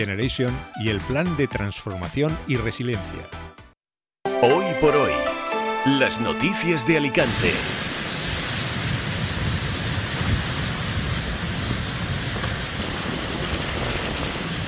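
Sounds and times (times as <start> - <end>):
speech: 0.0 - 3.6, 4.4 - 7.9
heavy rain in a thunderstorm in the interior of Alicante province: 7.0 - 14.6
deep rolling thunder in the interior of Alicante province: 7.3 - 14.6.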